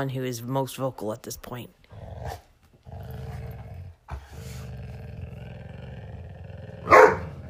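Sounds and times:
speech: 0:00.0 - 0:02.5
dog growling: 0:01.8 - 0:07.4
dog barking: 0:06.8 - 0:07.4.

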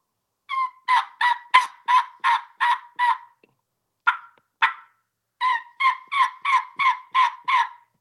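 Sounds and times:
three-reed tear-out mouth call with a slit imitating young turkey hen yelps: 0:00.5 - 0:03.4, 0:04.0 - 0:07.9.

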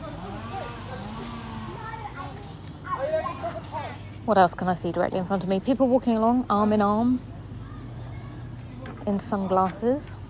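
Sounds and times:
children playing football on a school field: 0:00.0 - 0:04.2, 0:07.2 - 0:10.2
speech: 0:04.3 - 0:07.3, 0:09.0 - 0:10.2.

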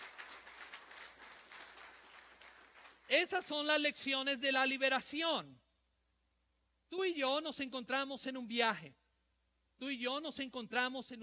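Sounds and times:
audience clapping steadily together: 0:00.0 - 0:03.1
speech: 0:03.1 - 0:05.7, 0:06.9 - 0:09.0, 0:09.8 - 0:11.2.

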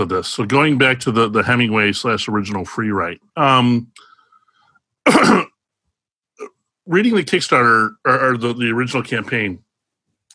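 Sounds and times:
speech: 0:00.0 - 0:04.1, 0:05.0 - 0:05.4, 0:06.4 - 0:09.6
single short harsh cough: 0:05.0 - 0:05.6.

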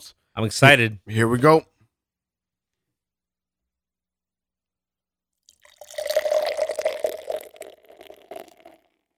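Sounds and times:
speech: 0:00.0 - 0:01.7
dark stout beer glugging into a glass: 0:05.5 - 0:09.0.

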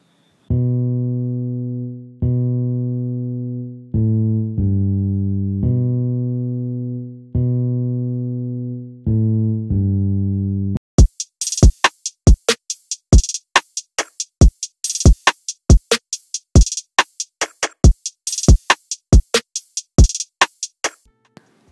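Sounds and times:
bass guitar playing a rhythm: 0:00.5 - 0:10.8
sizzling hi-hats of a drum kit: 0:11.0 - 0:21.0.

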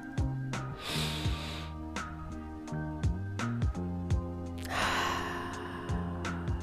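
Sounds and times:
musical backing: 0:00.0 - 0:06.6
deep breath in and out as a mindfulness pause: 0:00.8 - 0:01.8, 0:04.6 - 0:06.6.

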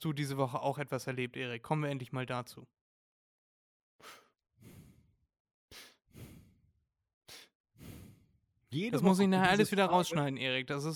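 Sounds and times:
speech: 0:00.0 - 0:02.8, 0:08.7 - 0:10.9
heavy breathing into a microphone: 0:04.0 - 0:05.1, 0:05.7 - 0:06.7, 0:07.3 - 0:08.4.

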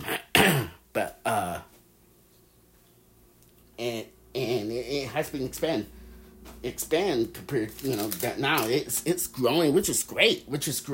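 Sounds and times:
voiced grunt: 0:00.0 - 0:01.7
person clearing throat: 0:00.0 - 0:01.8
speech: 0:05.2 - 0:06.0, 0:06.6 - 0:10.9.

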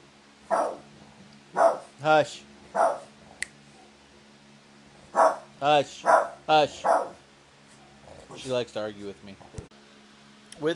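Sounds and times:
dog barking: 0:00.5 - 0:00.9, 0:01.5 - 0:02.0, 0:02.7 - 0:03.1, 0:05.1 - 0:07.2
speech: 0:02.0 - 0:02.9, 0:05.6 - 0:07.0, 0:08.4 - 0:09.6, 0:10.6 - 0:10.7.

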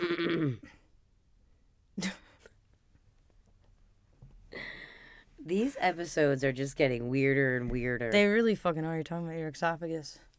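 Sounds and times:
person clearing throat: 0:00.0 - 0:00.8
speech: 0:05.5 - 0:10.3.

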